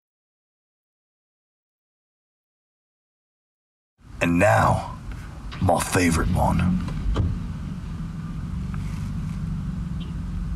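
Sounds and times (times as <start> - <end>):
car engine humming as it pulls out of a parking lot space: 4.0 - 10.5
speech: 4.2 - 4.9, 5.6 - 7.2.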